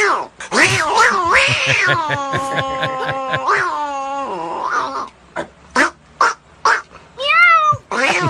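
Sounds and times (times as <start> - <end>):
laughter: 0.6 - 3.7, 7.8 - 8.2
speech: 1.7 - 4.7
cat meowing: 7.2 - 8.2.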